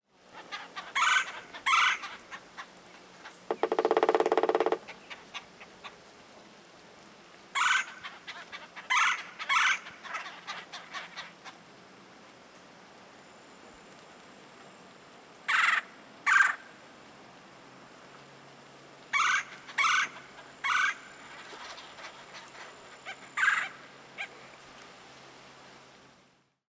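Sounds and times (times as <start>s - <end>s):
red-bellied woodpecker kwirr-call: 0.4s - 6.0s, 7.6s - 11.6s, 15.5s - 16.7s, 19.1s - 24.3s
red-bellied woodpecker drumming: 3.2s - 5.2s.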